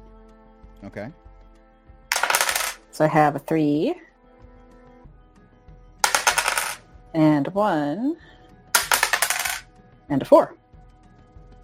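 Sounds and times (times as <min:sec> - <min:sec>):
speech: 0:00.8 - 0:01.3, 0:02.9 - 0:04.1, 0:07.1 - 0:08.4, 0:10.1 - 0:10.6
dice rolling on a table: 0:02.1 - 0:02.9, 0:06.0 - 0:06.8, 0:08.8 - 0:09.6.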